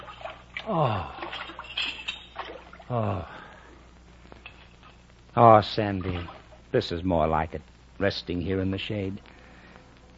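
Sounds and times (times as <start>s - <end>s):
buckets of cold water poured and splashed over neck: 0.0s - 3.0s
man gasping and groaning with relief: 0.6s - 1.3s, 2.9s - 3.7s
speech: 0.7s - 1.5s, 2.9s - 3.4s, 5.4s - 9.3s.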